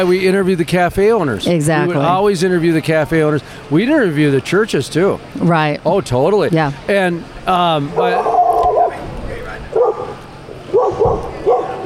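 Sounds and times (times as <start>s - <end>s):
speech: 0.0s - 8.4s
dog giving whiny high-pitched yips and barks: 8.0s - 9.0s, 9.7s - 11.8s.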